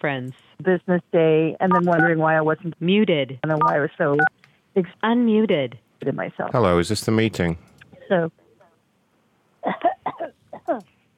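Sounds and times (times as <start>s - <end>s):
speech: 0.0s - 8.4s
person coughing: 9.6s - 10.8s.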